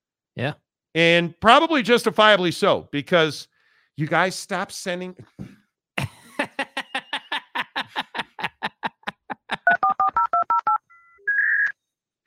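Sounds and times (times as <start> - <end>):
speech: 0.4 - 5.6
laughter: 6.0 - 10.0
telephone keypad dialing tones: 9.7 - 11.7.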